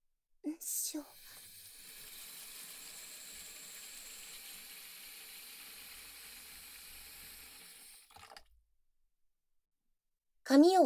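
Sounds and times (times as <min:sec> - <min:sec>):
hot water pouring into a wash tub: 0:01.0 - 0:08.5
speech: 0:10.5 - 0:10.8.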